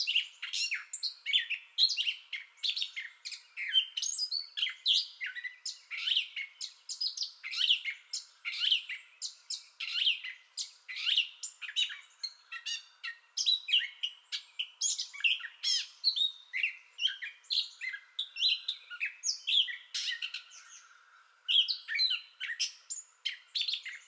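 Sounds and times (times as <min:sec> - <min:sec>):
gray catbird singing: 0:00.0 - 0:24.0.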